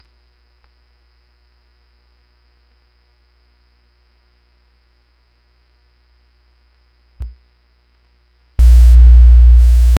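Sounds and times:
retro CRT screen starting up: 0:08.6 - 0:09.9.

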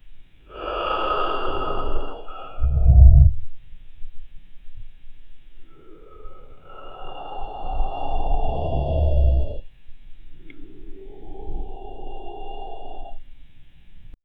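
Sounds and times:
slow heavy breathing: 0:00.5 - 0:03.6, 0:05.6 - 0:13.6.

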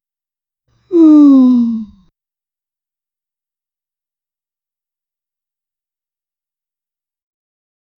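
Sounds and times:
person moaning softly in pain after a fall: 0:00.9 - 0:01.9.

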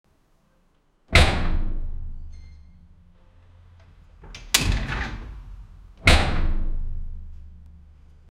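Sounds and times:
metal door crashing shut: 0:01.1 - 0:02.2, 0:04.2 - 0:07.3.

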